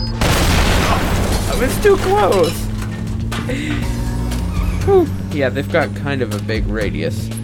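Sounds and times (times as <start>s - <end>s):
bomb exploding in a video game: 0.2s - 1.6s
speech: 1.6s - 2.6s, 3.4s - 4.0s, 4.8s - 7.3s.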